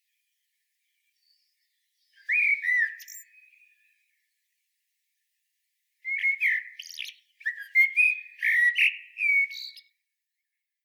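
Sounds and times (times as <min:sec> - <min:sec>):
common blackbird Turdus merula singing mellow fluted warbles with high twitters: 0:01.2 - 0:03.9, 0:06.0 - 0:09.9.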